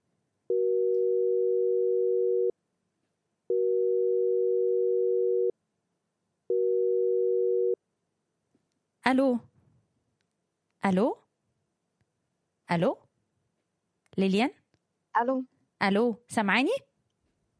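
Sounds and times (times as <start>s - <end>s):
telephone busy signal while a call is redialed: 0.5s - 2.5s, 3.5s - 5.5s, 6.5s - 7.8s
speech: 9.0s - 9.5s, 10.8s - 11.2s, 12.7s - 13.0s, 14.2s - 14.6s, 15.2s - 16.9s.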